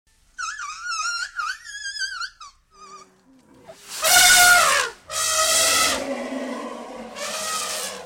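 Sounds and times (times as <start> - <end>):
Asian elephant squeaking in Thailand: 0.4 - 8.0
Asian elephant trumpet blast in Thailand: 3.8 - 8.0.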